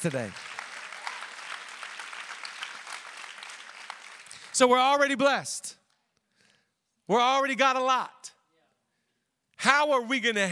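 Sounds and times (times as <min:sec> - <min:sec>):
speech: 0:00.0 - 0:00.5, 0:04.6 - 0:05.8, 0:07.1 - 0:08.4, 0:09.6 - 0:10.4
audience applauding: 0:00.0 - 0:04.6.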